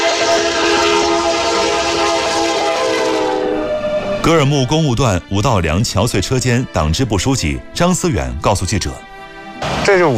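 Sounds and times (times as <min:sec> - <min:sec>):
train on high-altitude railway rumbling past: 0:00.0 - 0:05.4
speech: 0:04.3 - 0:09.1, 0:09.8 - 0:10.1.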